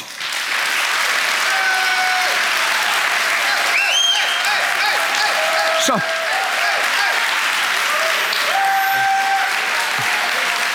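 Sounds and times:
loud sustained applause from a large audience for guests: 0.0 - 10.7
scattered cheers or whistles from audience: 1.3 - 10.7
speech: 5.8 - 6.3.

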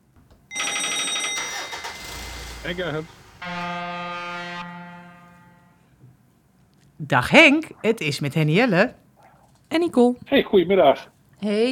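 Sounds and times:
car hands-free phone calling tone: 0.5 - 1.8
speech: 2.6 - 4.7, 7.0 - 9.0, 9.7 - 11.6.

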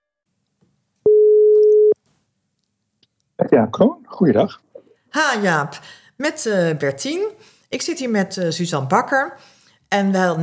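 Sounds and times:
telephone ringback tone while placing a call: 1.1 - 2.0
speech: 3.5 - 4.6, 5.2 - 10.4.

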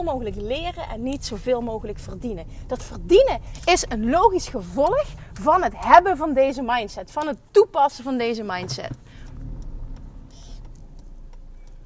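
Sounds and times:
speech: 0.0 - 9.0
car engine rumbling low while parking: 0.0 - 11.8
small clicks: 8.8 - 11.8.

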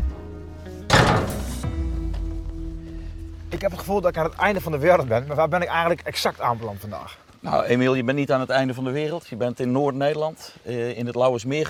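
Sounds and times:
door slammed shut at a training village in the Lauwersmeer area: 0.9 - 1.8
speech: 3.5 - 11.6.

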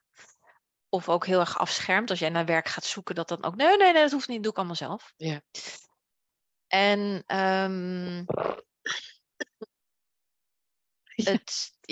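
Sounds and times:
speech: 0.9 - 5.8, 6.7 - 9.1, 11.2 - 11.9
woman coughing: 8.3 - 9.7.

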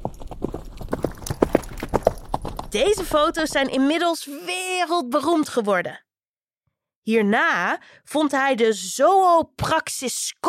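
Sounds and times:
horse hooves clip-clopping in a galloping rhythm: 0.0 - 4.0
speech: 2.7 - 6.0, 7.1 - 10.4.

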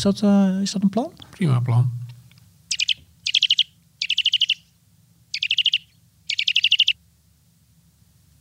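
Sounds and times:
speech: 0.0 - 2.0
Eurasian nuthatch trilling piping notes: 2.7 - 7.0.

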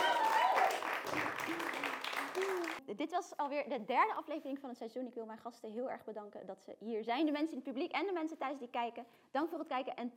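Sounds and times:
studio audience applause closing a talk show episode: 0.0 - 2.8
speech: 2.9 - 10.1.

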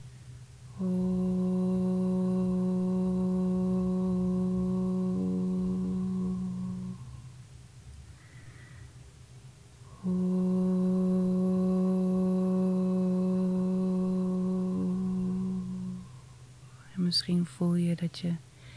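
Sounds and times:
voice singing a sustained O vowel tone: 0.7 - 7.4, 9.9 - 17.3
speech: 0.8 - 1.2, 18.0 - 18.5.

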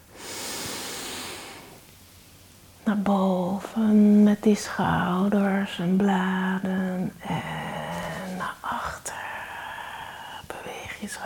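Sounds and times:
slow breath drawn in while raising the shoulders during a relaxation exercise: 0.1 - 1.8
speech: 2.9 - 7.6, 11.1 - 11.2.

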